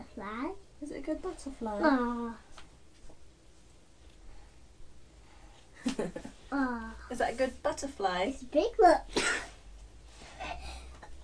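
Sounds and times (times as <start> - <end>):
faint hiss: 0.0 - 11.2
speech: 0.2 - 2.5, 6.0 - 9.4
sneeze: 9.1 - 9.6.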